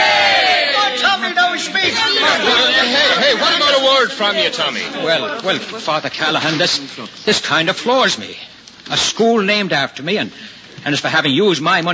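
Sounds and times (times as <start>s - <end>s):
crowd cheering hip hip hooray in unison: 0.0s - 5.3s
laughter: 0.7s - 7.2s
speech: 4.0s - 11.9s.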